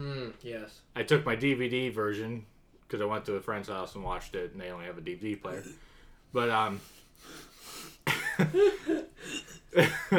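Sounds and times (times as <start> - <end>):
speech: 0.3 - 7.5, 8.4 - 10.1
person coughing from something caught in the throat: 8.1 - 8.5
laughter: 8.1 - 10.1.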